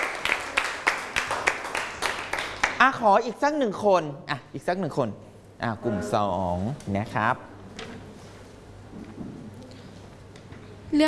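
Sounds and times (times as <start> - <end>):
faint classroom applause for a classmate: 0.0 - 2.8
speech: 2.8 - 7.5.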